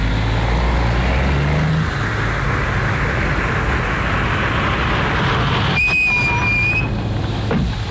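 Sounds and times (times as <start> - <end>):
road noise: 0.0 - 7.9
taxi engine rumble: 0.0 - 7.9
brief high-pitched squeal or whine: 1.1 - 7.1.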